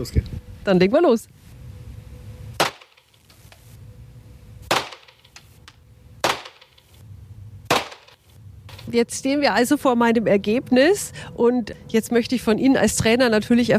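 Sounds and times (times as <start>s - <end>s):
speech: 0.0s - 1.4s, 8.9s - 13.7s
low rumbling background: 0.0s - 2.7s, 3.7s - 13.7s
gunshots at a shooting range: 2.6s - 3.1s, 4.7s - 5.2s, 6.2s - 6.8s, 7.7s - 8.2s.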